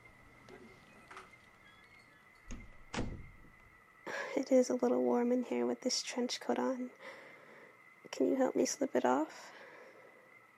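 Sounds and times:
faint steady hum: 0:00.0 - 0:10.5
office door soft handling knocks: 0:02.5 - 0:03.6
speech: 0:04.4 - 0:07.2, 0:08.2 - 0:09.6.

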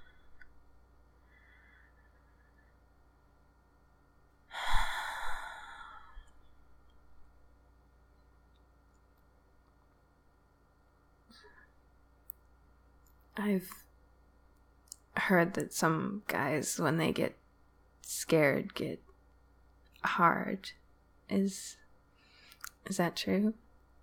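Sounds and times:
slow breathing in and out: 0:04.5 - 0:06.3
speech: 0:13.4 - 0:13.8, 0:15.3 - 0:17.4, 0:18.0 - 0:19.1, 0:20.0 - 0:21.8, 0:22.8 - 0:23.6.

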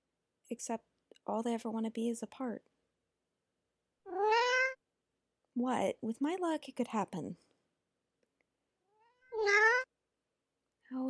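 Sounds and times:
speech: 0:00.5 - 0:02.7, 0:05.6 - 0:07.5
cat meowing: 0:04.1 - 0:04.8, 0:09.3 - 0:09.9.

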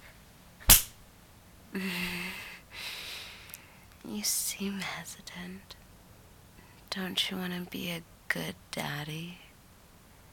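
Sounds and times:
hard slap: 0:00.6 - 0:01.0
speech: 0:01.8 - 0:02.0, 0:04.2 - 0:05.8, 0:06.9 - 0:09.4.

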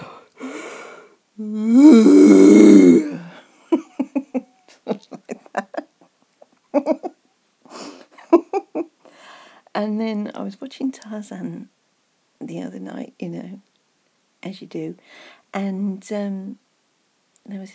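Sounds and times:
short choppy vocal bursts: 0:00.0 - 0:03.4
person yawning into a deep growling roar: 0:00.0 - 0:03.5
speech: 0:01.4 - 0:03.2, 0:11.1 - 0:11.8, 0:12.5 - 0:13.7, 0:14.4 - 0:16.6, 0:17.5 - 0:17.7.

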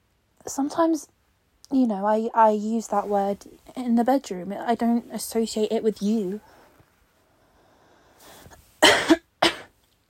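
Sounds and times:
speech: 0:00.5 - 0:06.6
person coughing: 0:08.8 - 0:09.7.

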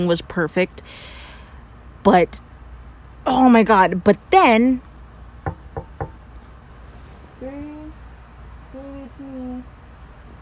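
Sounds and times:
speech: 0:00.0 - 0:01.2, 0:02.0 - 0:02.5, 0:03.2 - 0:04.9
firm knocks on a door: 0:05.4 - 0:06.2.

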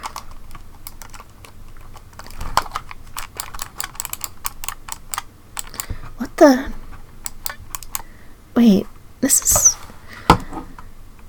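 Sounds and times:
typing on a computer keyboard being checked after falling off the desk: 0:00.0 - 0:05.9, 0:07.2 - 0:08.1
speech: 0:06.4 - 0:06.8, 0:08.6 - 0:09.6.

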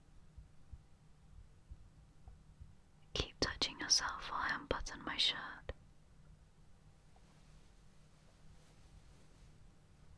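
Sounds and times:
soft droning hum: 0:00.0 - 0:10.1
racing heartbeat: 0:00.3 - 0:02.8
speech: 0:03.9 - 0:05.6.

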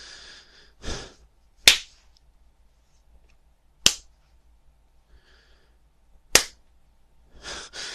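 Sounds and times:
sharp crisp slaps of a hand on skin: 0:01.6 - 0:02.0, 0:03.8 - 0:04.2, 0:06.3 - 0:06.6.

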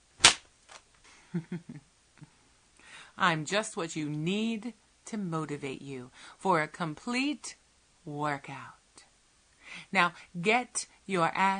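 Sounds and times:
leather flogger whip crack: 0:00.2 - 0:00.5
speech: 0:01.3 - 0:01.9, 0:03.2 - 0:08.8, 0:09.7 - 0:11.5.

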